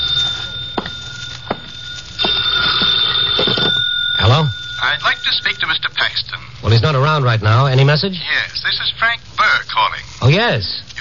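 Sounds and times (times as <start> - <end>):
telephone ringing with a bright high-pitched trill: 0.0 - 6.8
speech: 5.3 - 11.0.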